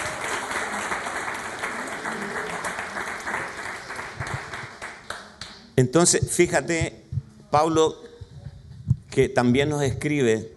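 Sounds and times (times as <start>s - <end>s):
church congregation applauding: 0.0s - 5.5s
speech: 5.8s - 8.0s, 9.2s - 10.5s.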